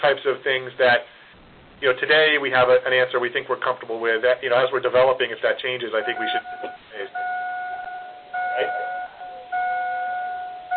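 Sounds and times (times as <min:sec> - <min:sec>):
speech: 0:00.0 - 0:01.2, 0:01.8 - 0:07.4, 0:08.6 - 0:08.8
car electronic warning chime as someone gets in: 0:06.0 - 0:10.7.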